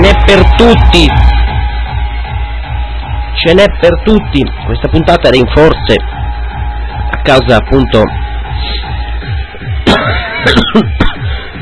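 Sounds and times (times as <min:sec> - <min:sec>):
low rhythmic hum: 0:00.0 - 0:11.6
speech: 0:00.3 - 0:01.3, 0:03.4 - 0:06.2, 0:07.2 - 0:08.9, 0:10.4 - 0:11.2
hoarse person coughing harshly: 0:09.8 - 0:11.5.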